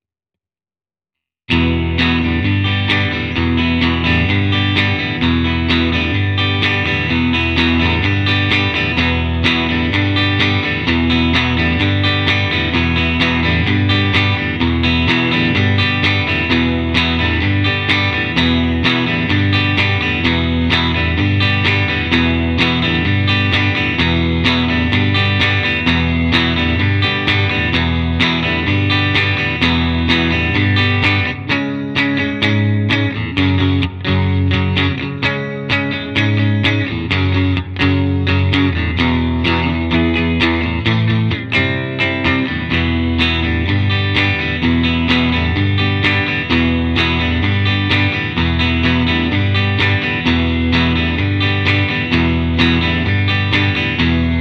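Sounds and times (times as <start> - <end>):
clean guitar: 1.5 - 54.3.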